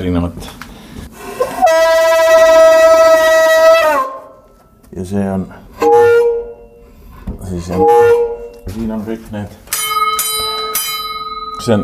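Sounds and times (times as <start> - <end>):
speech: 0.0 - 0.6, 5.0 - 5.6, 7.5 - 9.6, 11.6 - 11.8
ship's foghorn blast with a bright buzzy tone: 1.6 - 4.4, 5.8 - 6.9, 7.7 - 8.6.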